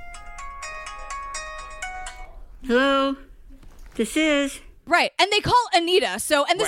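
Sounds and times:
phone ringtone electronic melody of bright tonal beeps: 0.0 - 2.4
speech: 2.6 - 3.2, 4.0 - 6.6.

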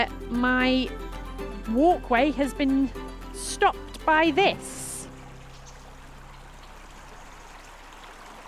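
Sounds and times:
speech: 0.0 - 1.0, 1.6 - 4.8
fast-flowing river water rushing: 4.5 - 8.4.

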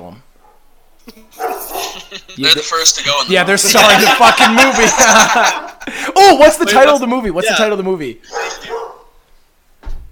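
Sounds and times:
dog barking: 0.4 - 0.7, 1.4 - 2.0, 8.3 - 9.2
laughter: 1.1 - 7.0
speech: 2.1 - 8.4.

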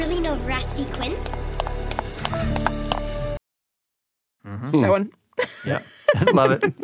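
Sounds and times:
steady musical backdrop: 0.0 - 3.4
speech: 0.3 - 1.5, 2.3 - 2.9, 4.6 - 6.8
sharp footsteps sound effect: 0.4 - 3.2
laughter: 5.4 - 6.8.

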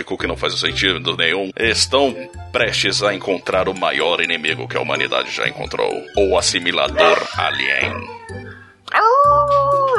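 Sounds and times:
speech: 0.0 - 9.6
dog howling: 5.8 - 9.9.

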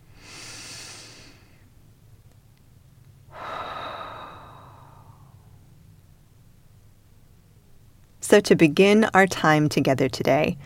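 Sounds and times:
slow audible breaths during a guided group gathering: 0.0 - 1.7, 3.3 - 5.6
speech: 8.3 - 10.6.

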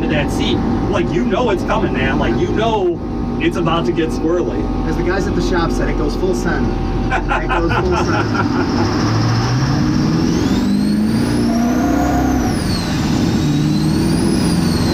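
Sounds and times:
turbocharged truck engine accelerating hard: 0.0 - 14.9
speech: 0.1 - 9.2
laughter: 7.1 - 9.0
high turbo whistle: 10.2 - 14.9.

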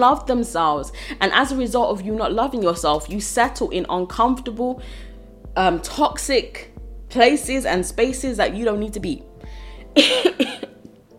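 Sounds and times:
speech: 0.0 - 9.3, 10.0 - 11.1
raspy coughs: 10.0 - 11.1.

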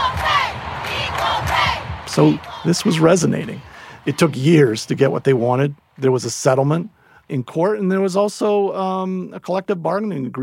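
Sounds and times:
huge stadium crowd chanting equal pay in unison: 0.0 - 5.2
speech: 2.2 - 10.4.

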